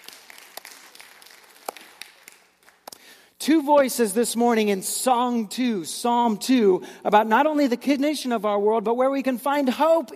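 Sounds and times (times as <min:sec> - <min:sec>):
crowd applauding softly: 0:00.0 - 0:03.1
speech: 0:03.4 - 0:10.1.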